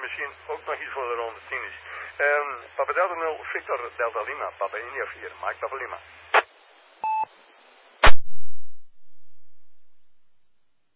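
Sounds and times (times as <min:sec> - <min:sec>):
steady hiss: 0:00.0 - 0:10.9
speech: 0:00.1 - 0:06.4
single short electronic beep from a telephone: 0:07.0 - 0:07.3.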